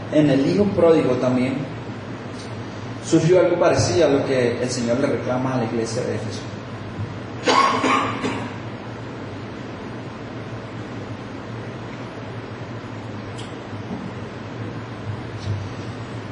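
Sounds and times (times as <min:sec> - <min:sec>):
low hum: 0:00.0 - 0:16.3
speech: 0:00.1 - 0:01.9, 0:03.1 - 0:06.6
man coughing: 0:07.4 - 0:08.6.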